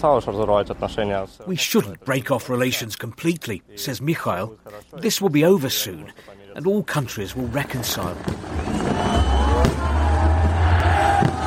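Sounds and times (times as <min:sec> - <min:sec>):
speech: 0:00.0 - 0:09.3
large outdoor crowd murmuring and cheering: 0:08.1 - 0:11.4
firework bangs at City Day display in Yaroslavl Russia: 0:08.2 - 0:11.4.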